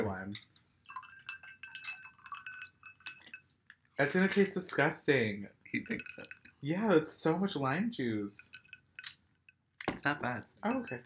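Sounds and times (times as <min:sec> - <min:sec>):
speech: 0:00.1 - 0:00.6, 0:04.0 - 0:08.6, 0:10.0 - 0:11.0
ice cubes in a drink clinking against a glass: 0:00.3 - 0:03.4, 0:04.0 - 0:09.1.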